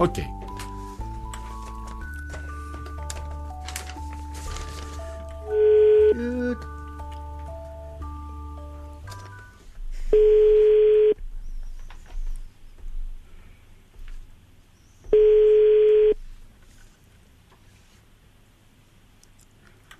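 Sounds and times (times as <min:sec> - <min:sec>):
speech: 0:00.0 - 0:00.4
telephone dialing tones: 0:05.4 - 0:06.2, 0:10.2 - 0:11.2, 0:15.2 - 0:16.2.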